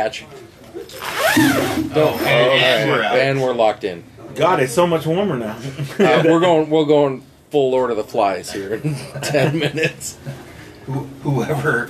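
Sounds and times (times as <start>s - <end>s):
speech: 0.0s - 11.8s
zipper being zipped up: 0.9s - 2.4s
laughter: 5.6s - 6.4s, 8.7s - 10.4s.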